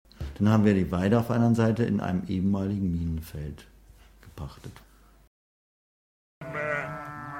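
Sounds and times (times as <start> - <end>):
speech: 0.4 - 3.7, 4.4 - 4.9
sheep bleating loudly: 6.4 - 7.3.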